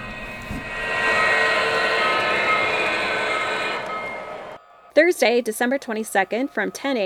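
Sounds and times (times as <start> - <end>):
whirring mechanical hum: 0.0 - 4.9
toy electric train whistle: 0.0 - 7.0
speech: 5.0 - 7.0.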